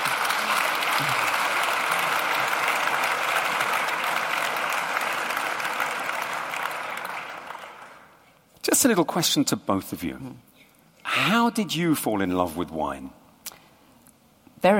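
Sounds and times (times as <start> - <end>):
room full of people applauding: 0.0 - 8.2
speech: 8.8 - 10.5, 11.2 - 13.2.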